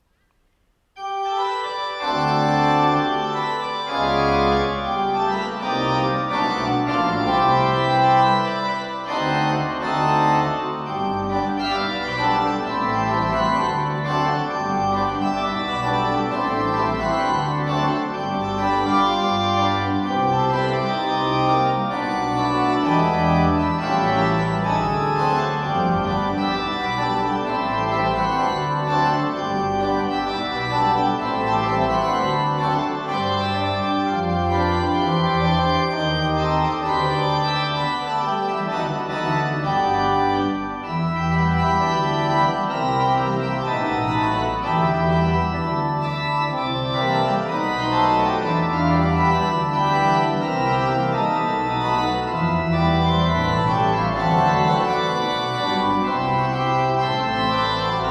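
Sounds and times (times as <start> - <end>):
large organ: 1.0 - 58.1.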